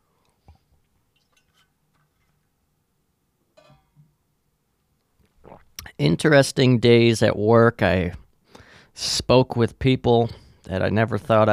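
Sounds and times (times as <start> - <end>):
wet mouth noises: 5.2 - 6.0
soft swallowing: 5.3 - 5.9
sipping water: 5.3 - 6.0
speech: 5.5 - 8.2, 9.0 - 11.5.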